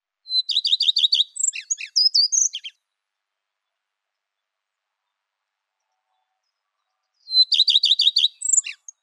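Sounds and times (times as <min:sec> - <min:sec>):
common redstart singing: 0:00.3 - 0:02.9, 0:05.8 - 0:09.0.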